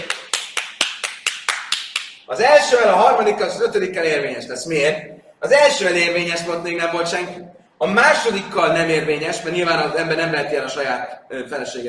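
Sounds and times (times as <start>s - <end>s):
rhythmic hand clapping: 0.0s - 2.3s
speech: 2.3s - 11.8s.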